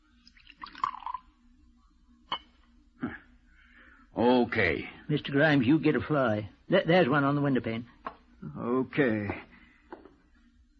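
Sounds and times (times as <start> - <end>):
liquid pouring into a glass: 0.1 - 1.5
speech: 4.2 - 9.4.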